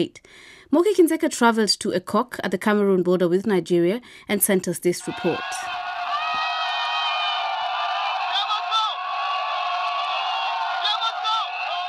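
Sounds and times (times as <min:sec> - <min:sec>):
speech: 0:00.0 - 0:05.8
crowd of mostly young people shouting while attacking government buildings and police stations: 0:05.0 - 0:11.8.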